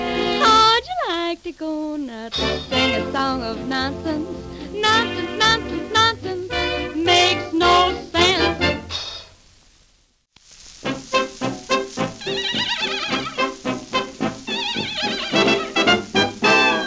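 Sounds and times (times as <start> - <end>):
musical backing: 0.0 - 0.8, 2.3 - 9.2, 10.8 - 16.8
speech: 1.6 - 6.5
horse neighing and whinnying: 12.2 - 13.6, 14.5 - 15.9.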